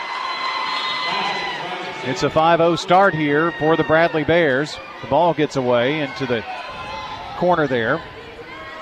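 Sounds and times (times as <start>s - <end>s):
basketball crowd cheering after a basket: 0.0s - 8.8s
speech: 2.0s - 6.7s, 7.4s - 8.1s.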